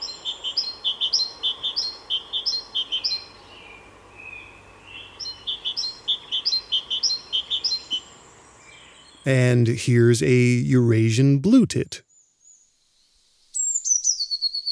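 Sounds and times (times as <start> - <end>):
background hiss: 0.0 - 14.2
great tit song in France: 9.2 - 12.0
speech: 9.2 - 12.1.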